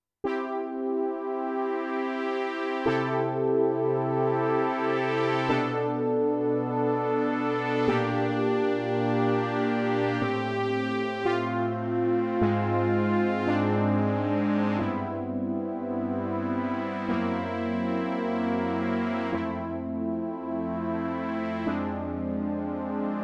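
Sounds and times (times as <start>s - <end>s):
poly synth pad: 0.3s - 23.2s.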